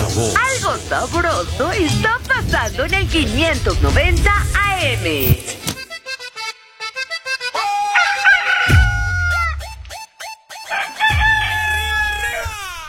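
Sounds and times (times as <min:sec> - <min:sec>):
speech: 0:00.2 - 0:05.6
rooster crowing cock-a-doodle-doo: 0:07.6 - 0:09.8, 0:10.6 - 0:12.6
rooster clucking: 0:07.9 - 0:09.6, 0:10.6 - 0:12.4.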